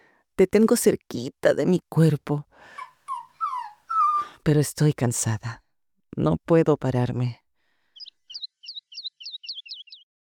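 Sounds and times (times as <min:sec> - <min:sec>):
speech: 0:00.4 - 0:02.8, 0:04.4 - 0:05.6, 0:06.2 - 0:07.4
small bird chirping: 0:02.8 - 0:04.3, 0:07.9 - 0:10.1.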